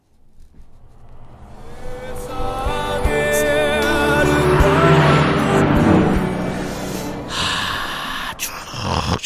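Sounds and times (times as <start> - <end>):
car speeding past: 0.2 - 8.4
music playing in the passing car: 1.8 - 8.5.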